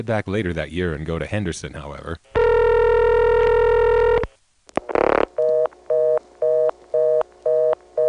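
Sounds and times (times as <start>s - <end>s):
speech: 0.0s - 2.4s
buzzy telephone tone: 2.3s - 8.0s.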